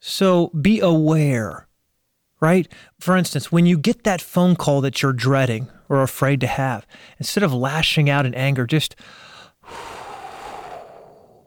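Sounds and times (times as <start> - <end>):
speech: 0.0 - 1.7, 2.4 - 10.0
person taking a deep breath: 9.0 - 11.4.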